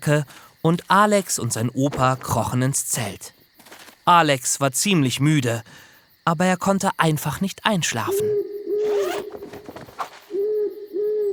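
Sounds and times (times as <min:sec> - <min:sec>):
speech: 0:00.0 - 0:03.4, 0:04.0 - 0:08.5
owl hooting at night beside a campsite tent: 0:07.8 - 0:11.3
scratchy rustle: 0:08.8 - 0:10.4.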